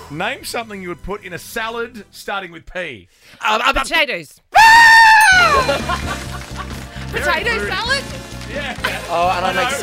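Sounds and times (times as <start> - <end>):
speech: 0.1 - 9.8
person screaming: 4.6 - 5.7
laughter: 5.4 - 9.8.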